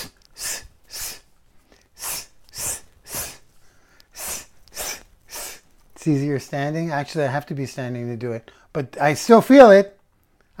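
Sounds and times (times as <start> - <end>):
person forcefully breathing out: 0.0 - 5.8
speech: 6.0 - 10.0.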